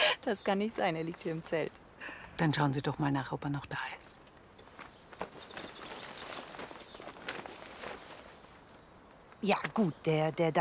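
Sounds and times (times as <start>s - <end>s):
speech: 0.2s - 4.3s, 9.4s - 10.5s
soft footsteps of someone sneaking out of a tent: 4.4s - 9.4s.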